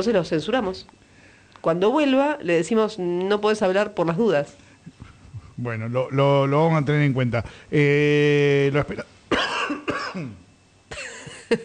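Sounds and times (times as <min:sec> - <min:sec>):
speech: 0:00.0 - 0:01.0, 0:01.6 - 0:05.0, 0:05.6 - 0:09.1, 0:10.1 - 0:11.6
person coughing: 0:09.0 - 0:11.6.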